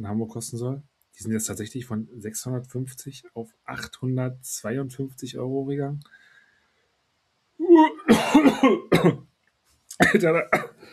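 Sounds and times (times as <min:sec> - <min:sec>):
speech: 0:00.0 - 0:06.2, 0:07.7 - 0:09.3, 0:10.0 - 0:10.7
person coughing: 0:07.9 - 0:09.2, 0:09.9 - 0:10.8.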